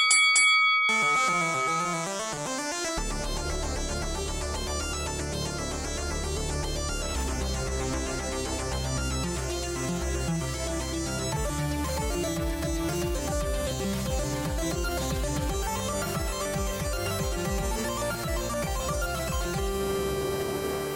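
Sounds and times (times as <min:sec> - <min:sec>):
bright ringing bell: 0:00.0 - 0:02.8
loud music with a steady beat: 0:01.6 - 0:20.9.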